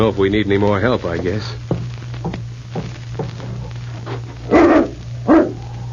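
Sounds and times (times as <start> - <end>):
speech: 0.0 - 2.4
low electrical hum: 0.0 - 5.9
dog barking: 4.5 - 5.6.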